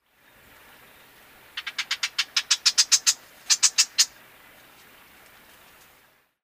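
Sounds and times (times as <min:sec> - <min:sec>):
Marsh Wren Cistothorus palustris singing: 0:00.8 - 0:04.2.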